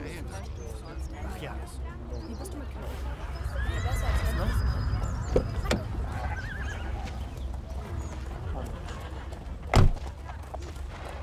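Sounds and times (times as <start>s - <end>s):
low steady outdoor rumble: 0.0s - 11.2s
speech: 1.4s - 4.6s
laughter: 3.4s - 9.8s
gelding whinnying: 3.5s - 5.4s, 6.0s - 7.0s.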